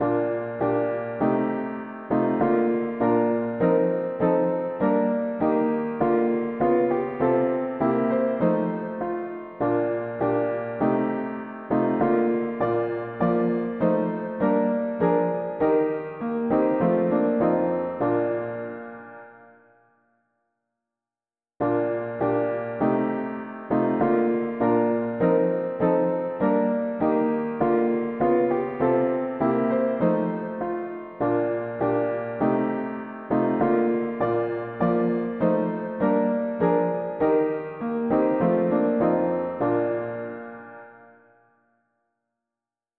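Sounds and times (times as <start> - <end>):
mono piano playing a hymn: 0.0 - 19.6, 21.6 - 41.3.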